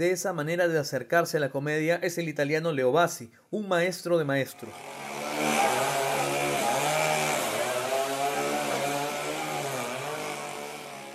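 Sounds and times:
speech: 0.0s - 5.7s
chainsaw cutting through a wall: 4.6s - 11.1s.

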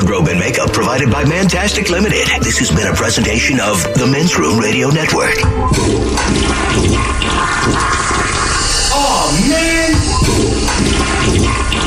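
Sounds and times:
speech: 0.1s - 8.2s
toilet flushing: 5.4s - 11.8s.

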